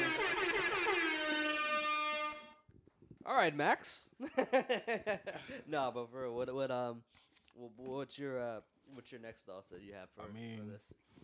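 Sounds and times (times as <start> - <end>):
air horn blast: 0.0 - 2.7
speech: 3.3 - 11.2
laughter: 4.2 - 5.8.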